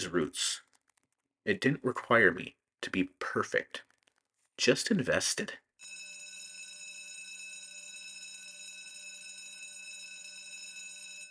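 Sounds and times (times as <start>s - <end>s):
speech: 0.0s - 0.6s, 1.4s - 3.9s, 4.6s - 6.0s
school bell ringing: 5.8s - 11.2s.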